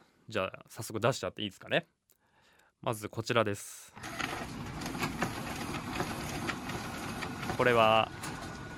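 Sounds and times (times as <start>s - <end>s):
speech: 0.3s - 2.0s, 2.8s - 4.2s, 7.6s - 8.3s
photocopier running: 4.0s - 8.7s.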